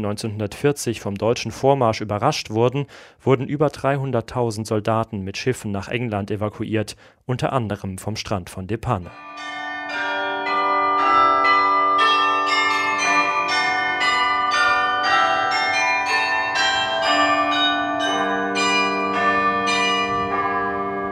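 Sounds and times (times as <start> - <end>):
speech: 0.0 - 10.0
bells of the Church of Our Lady in Nieuwpoort Belgium pealing: 9.1 - 21.1.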